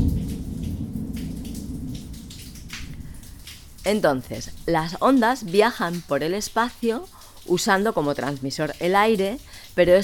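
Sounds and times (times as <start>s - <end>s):
deep continuous thunder rumbling: 0.0s - 5.0s
steady rainfall with raindrop patter: 0.0s - 10.0s
speech: 3.9s - 10.0s.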